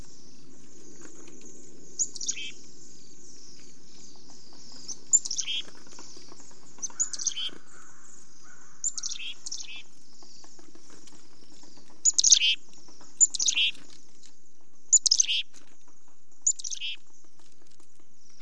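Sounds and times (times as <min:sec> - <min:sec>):
black-capped chickadee calling in New York: 0:02.0 - 0:02.7, 0:04.7 - 0:10.0, 0:11.9 - 0:13.9, 0:14.9 - 0:15.6, 0:16.4 - 0:17.0.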